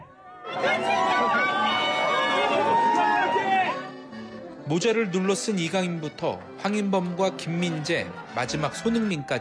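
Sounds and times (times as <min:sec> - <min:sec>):
dense crowd cheering and shouting outdoors: 0:00.0 - 0:04.0, 0:06.9 - 0:09.3
speech: 0:04.7 - 0:09.3.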